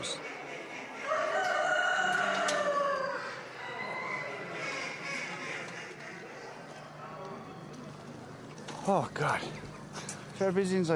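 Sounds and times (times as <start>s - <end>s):
steady hubbub of indoor crowd noise: 0.0s - 10.9s
rooster crowing in a cage at a poultry show: 1.0s - 4.5s
speech: 8.9s - 9.6s, 10.4s - 10.9s.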